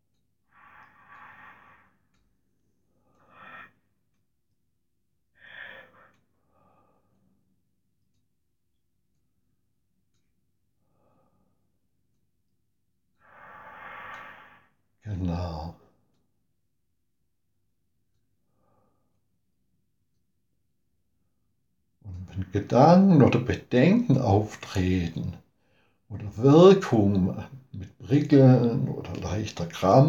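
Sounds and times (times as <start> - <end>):
slow deep breathing: 0.5 - 4.2, 5.4 - 7.6, 10.8 - 11.8, 13.1 - 14.9, 18.4 - 19.4, 25.6 - 26.1
speech: 22.4 - 25.4, 26.1 - 30.0.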